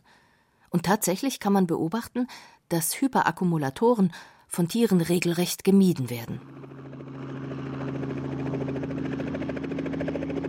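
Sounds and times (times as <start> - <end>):
speech: 0.7 - 6.5
helicopter in flight with rotor thudding: 6.4 - 10.4.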